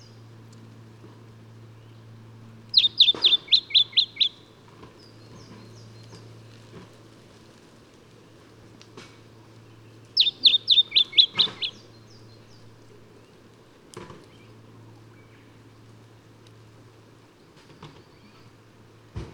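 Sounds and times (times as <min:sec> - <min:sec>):
quiet background hum: 0:00.0 - 0:19.3
lemon-bellied flyrobin Microeca flavigaster high clipped notes: 0:02.7 - 0:04.6, 0:10.0 - 0:12.6.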